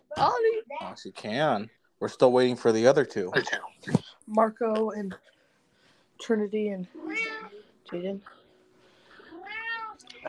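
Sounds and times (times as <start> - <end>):
speech: 0.2 - 5.4, 6.2 - 7.3, 7.9 - 8.4
drawn-out cat meow: 7.0 - 7.6, 9.3 - 10.2.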